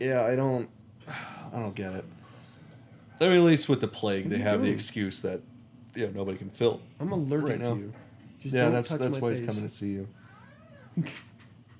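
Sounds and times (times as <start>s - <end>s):
speech: 0.0s - 2.2s, 3.2s - 10.2s, 11.0s - 11.3s
cat meowing: 10.2s - 11.0s.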